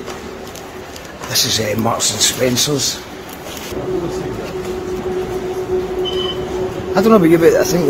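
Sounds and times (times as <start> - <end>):
noise at Waverley train station: 0.0 - 7.8
speech: 1.3 - 3.1, 3.7 - 4.9, 7.0 - 7.8
low engine hum from an idling train at Waverley train station in Edinburgh: 3.8 - 7.8.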